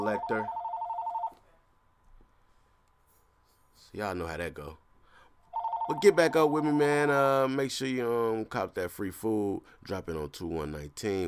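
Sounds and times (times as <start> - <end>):
telephone bell ringing: 0.0 - 1.4, 5.5 - 6.9
faint low noise: 0.0 - 11.2
speech: 0.1 - 0.6, 3.8 - 4.8, 5.9 - 11.2.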